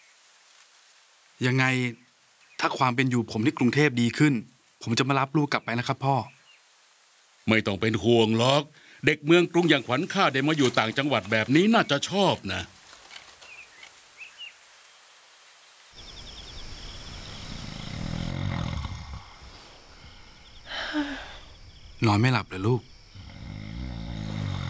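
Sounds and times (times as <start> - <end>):
speech: 1.4 - 2.0, 2.6 - 6.4, 7.4 - 12.8, 22.0 - 22.9
old man snoring loudly with deep rasping breaths: 17.3 - 20.3, 23.1 - 24.6.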